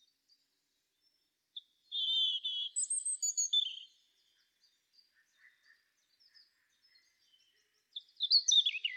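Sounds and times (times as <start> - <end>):
European robin Erithacus rubecula singing: 1.0 - 4.3, 6.9 - 8.9.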